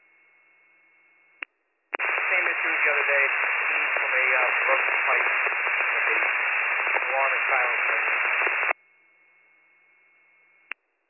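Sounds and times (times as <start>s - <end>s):
voice under radio static: 2.0s - 8.3s
tinny radio static: 2.0s - 8.8s.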